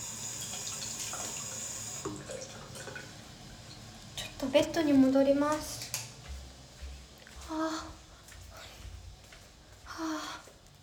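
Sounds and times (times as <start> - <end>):
tap water running into a sink while washing hands: 0.0 - 3.2
speech: 4.4 - 5.8.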